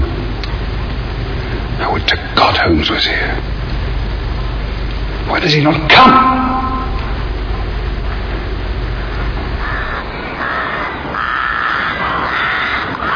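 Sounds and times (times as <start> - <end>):
low rumbling background: 0.0 - 11.7
speech: 2.1 - 3.6, 5.2 - 6.6
birds cawing at daybreak: 8.9 - 13.1.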